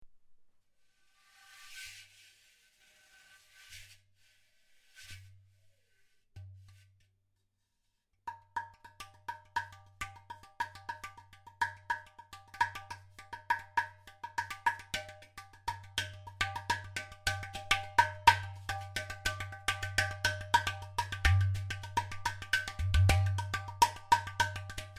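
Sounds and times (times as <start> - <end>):
udu drum: 8.3 - 24.9.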